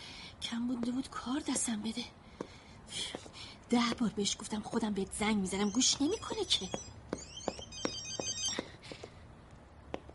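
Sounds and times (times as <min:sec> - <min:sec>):
speech: 0:00.5 - 0:02.3, 0:02.9 - 0:07.0
phone ringing: 0:06.5 - 0:08.7.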